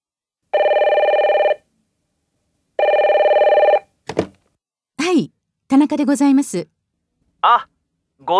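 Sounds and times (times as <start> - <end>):
telephone ringing with a rapid warbling trill: 0.5 - 1.6, 2.8 - 3.9
speech: 5.2 - 6.8, 7.4 - 8.3.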